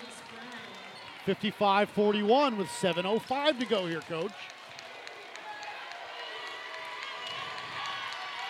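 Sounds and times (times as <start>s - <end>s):
basketball crowd and bench cheering and clapping: 0.0s - 8.4s
speech: 1.2s - 4.6s.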